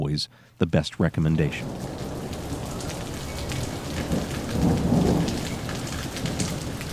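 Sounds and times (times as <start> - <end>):
speech: 0.2 - 2.1
deep roll of thunder rumbling: 1.4 - 6.9
heavy rain pouring: 1.4 - 6.9.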